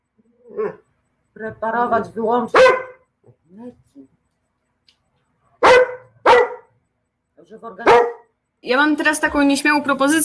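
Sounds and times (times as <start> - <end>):
speech: 0.5 - 0.8, 1.4 - 2.8, 3.5 - 4.2, 7.4 - 10.2
dog barking: 2.5 - 3.1, 5.6 - 6.8, 7.8 - 8.3.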